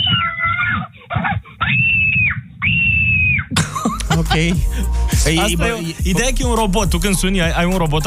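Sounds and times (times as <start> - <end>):
recorded human scream through a tinny speaker: 0.0 - 0.9, 1.6 - 3.6
laughter: 3.6 - 6.0
speech: 4.3 - 8.0.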